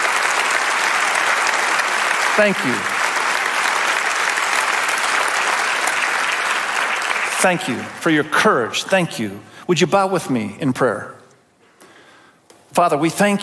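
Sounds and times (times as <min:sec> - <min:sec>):
audience applause: 0:00.0 - 0:08.0
speech: 0:02.4 - 0:02.9, 0:07.4 - 0:11.2, 0:12.8 - 0:13.4.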